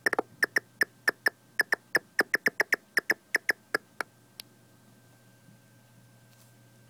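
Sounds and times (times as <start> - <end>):
big brown bat clicky chirps: 0.0 - 4.1.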